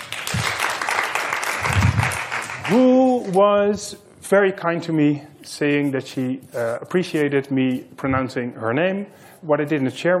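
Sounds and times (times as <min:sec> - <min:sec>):
audience applause: 0:00.0 - 0:02.9
speech: 0:02.7 - 0:10.1.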